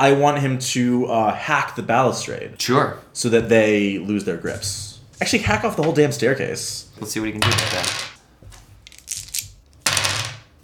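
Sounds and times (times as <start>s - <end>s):
speech: 0.0s - 8.1s
dice tumbling across a hard surface: 7.4s - 8.2s, 8.8s - 10.5s
dice rattling and clattering: 8.9s - 10.5s.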